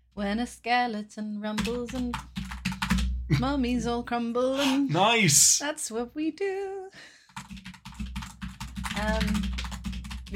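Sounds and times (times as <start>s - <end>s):
speech: 0.2s - 2.3s, 3.3s - 7.7s, 9.0s - 9.6s
typing on a computer keyboard: 1.6s - 3.1s, 7.3s - 10.3s.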